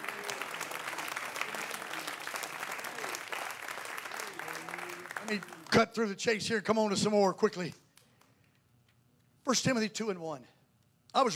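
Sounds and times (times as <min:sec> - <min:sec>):
audience clapping hands: 0:00.0 - 0:06.1
speech: 0:05.3 - 0:07.8, 0:09.5 - 0:11.3.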